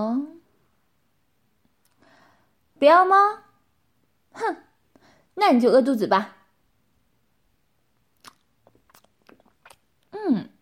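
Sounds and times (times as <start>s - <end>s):
speech: 0.0s - 0.4s, 2.8s - 3.4s, 4.4s - 4.7s, 5.4s - 6.4s, 10.2s - 10.5s
chewing beef with moist mouth clicks and smacks: 8.2s - 10.1s.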